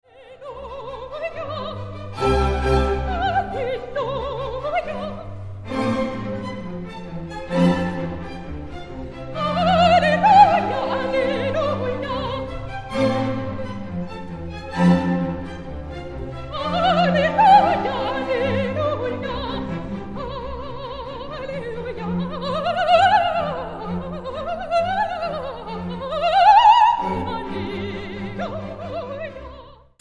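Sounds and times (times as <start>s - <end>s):
choir singing a motet: 0.1s - 29.9s.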